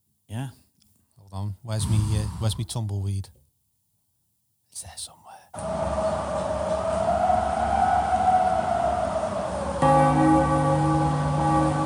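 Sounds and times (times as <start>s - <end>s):
speech: 0.4s - 0.6s, 1.4s - 3.4s, 4.8s - 6.5s
church bells ringing: 5.6s - 11.8s
hollow wavering wind-like drone: 5.6s - 11.8s.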